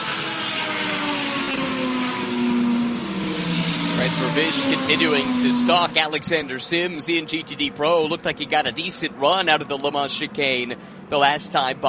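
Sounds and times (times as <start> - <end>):
race car engine pulling away: 0.0 - 11.8
speech: 4.4 - 11.8.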